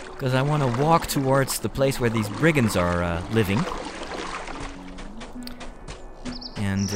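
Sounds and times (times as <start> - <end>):
continuous watery churning and splashing: 0.0 - 5.4
speech: 0.2 - 3.8, 6.7 - 6.9.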